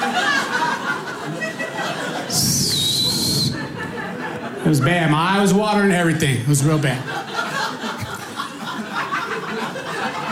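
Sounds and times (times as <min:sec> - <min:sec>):
crowd murmur and chuckles: 0:00.0 - 0:10.3
audience member whistling shrilly: 0:02.4 - 0:03.6
speech: 0:04.6 - 0:07.2.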